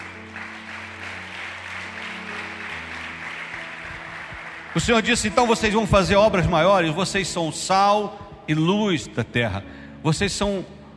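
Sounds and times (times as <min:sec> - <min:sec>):
large church audience applauding during a sermon: 0:00.0 - 0:06.6
sustained low keyboard chords: 0:00.0 - 0:10.9
speech: 0:04.8 - 0:10.8.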